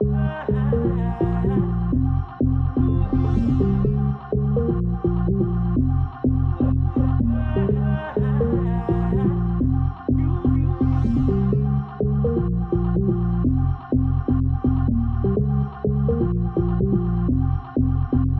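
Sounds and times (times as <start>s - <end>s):
vocal samples: 0.0s - 18.3s
deep house organ melody in F minor: 10.1s - 11.2s.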